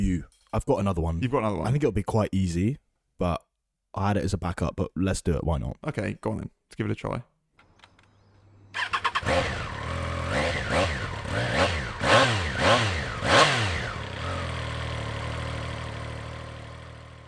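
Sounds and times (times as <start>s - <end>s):
speech: 0.0s - 7.3s
Triumph Triple motorcycle engine revving then idling: 8.7s - 17.2s.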